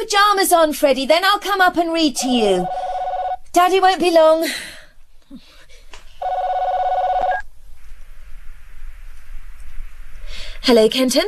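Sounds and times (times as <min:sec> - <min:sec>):
speech: 0:00.0 - 0:02.9, 0:03.6 - 0:05.5, 0:10.6 - 0:11.2
telephone ringing with an electronic trill: 0:02.2 - 0:03.5, 0:06.2 - 0:07.4.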